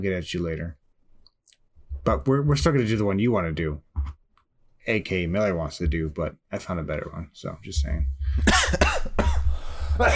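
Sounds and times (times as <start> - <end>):
speech: 0.0 - 0.8, 2.0 - 4.2, 4.8 - 9.0, 10.0 - 10.1
person coughing: 8.4 - 10.1.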